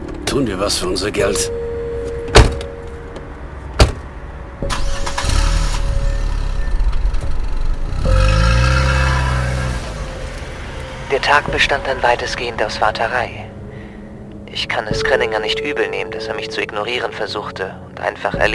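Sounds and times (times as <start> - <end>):
speech: 0.4 - 1.6, 11.2 - 13.5, 14.6 - 18.5
car engine starting, idling and revving as the car pulls away: 1.9 - 13.7
car doors slamming: 2.0 - 5.2.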